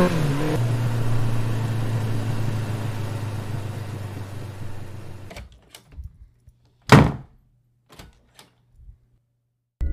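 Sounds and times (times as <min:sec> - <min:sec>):
steady low hum: 0:00.1 - 0:05.3
door shutting with a solid thump: 0:06.9 - 0:07.3, 0:07.9 - 0:08.6
metallic clicks and rattles of a lock being turned: 0:07.9 - 0:08.7.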